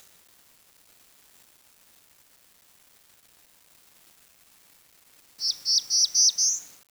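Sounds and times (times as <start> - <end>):
bird whistling high clear notes: 5.4 - 6.7.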